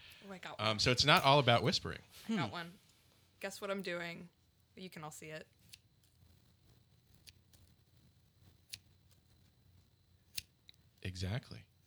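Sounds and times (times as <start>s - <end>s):
low hum: 0.0s - 11.8s
speech: 0.2s - 2.8s, 3.4s - 5.6s, 11.1s - 11.7s
scissors snipping open and shut: 5.6s - 6.2s, 7.1s - 7.8s, 8.4s - 9.3s, 10.3s - 10.8s.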